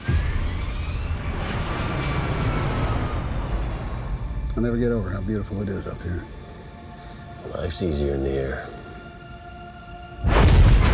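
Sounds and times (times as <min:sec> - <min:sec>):
airliner jet engines roaring during takeoff from runway: 0:00.0 - 0:04.9
speech: 0:04.6 - 0:06.4, 0:07.4 - 0:08.7.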